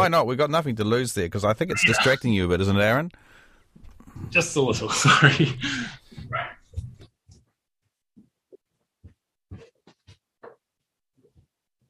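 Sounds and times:
speech: 0.0 - 3.4, 4.2 - 6.9
female dog barking and yipping: 1.7 - 2.2, 6.3 - 6.7
laughter: 4.8 - 6.0.

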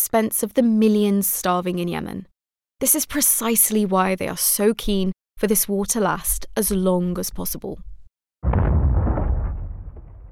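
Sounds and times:
speech: 0.0 - 7.9
wartime explosion in Yemen with deep sustained roar: 8.4 - 10.3.

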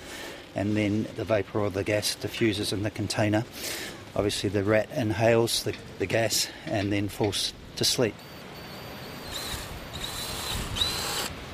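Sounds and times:
speech: 0.6 - 8.3
drill boring a hole in a brass collar: 8.2 - 11.4.

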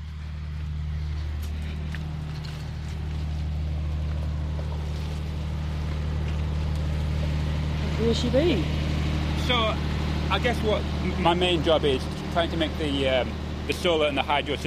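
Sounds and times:
generator in small housing backing up solar and hydro power droning: 0.0 - 14.6
speech: 8.1 - 8.8, 9.5 - 14.6.

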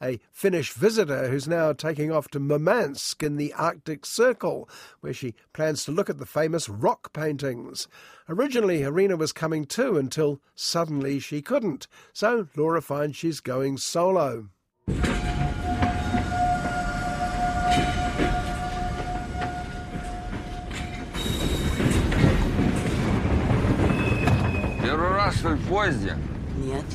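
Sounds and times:
speech: 0.0 - 15.4, 25.7 - 26.9
train wheels screeching and squealing: 14.9 - 25.6
train heading to Murmansk in the Arctic Circle rumbling along rails: 14.9 - 26.9.

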